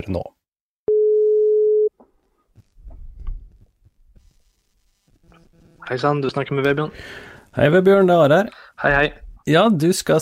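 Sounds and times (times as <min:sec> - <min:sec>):
speech: 0:00.0 - 0:00.4, 0:05.9 - 0:10.2
telephone ringback tone while a call is being placed: 0:00.9 - 0:01.9.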